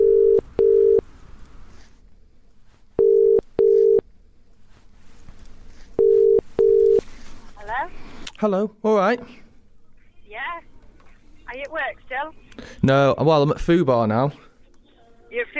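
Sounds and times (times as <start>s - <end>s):
telephone line tone double beeps before the call connects: 0.0s - 1.0s, 3.0s - 4.0s
faint hiss: 0.0s - 15.5s
speech: 8.4s - 9.4s, 11.5s - 14.5s.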